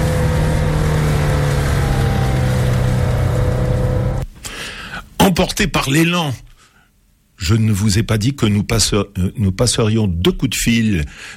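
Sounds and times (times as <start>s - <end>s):
car engine and road drone driving out of town: 0.0s - 4.2s
speech: 5.4s - 6.4s, 7.4s - 11.3s.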